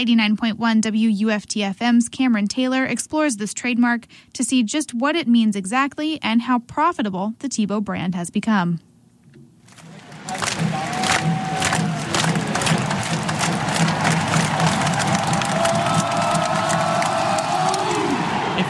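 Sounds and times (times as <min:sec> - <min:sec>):
speech: 0:00.0 - 0:08.9
people clapping in a stadium crowd: 0:09.7 - 0:18.6
football stadium crowd at a University of Florida Gators game cheering: 0:09.8 - 0:18.6
people shouting in a stadium crowd: 0:10.0 - 0:18.6.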